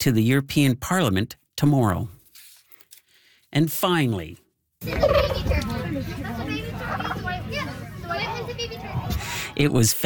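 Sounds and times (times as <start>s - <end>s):
speech: 0.0s - 2.2s, 3.5s - 6.6s, 9.6s - 10.0s
turkeys gobbling at a poultry costume contest at a country fair in Moore, Saskatchewan: 4.8s - 9.5s
dense loud crowd babble at a country fair: 4.8s - 9.8s.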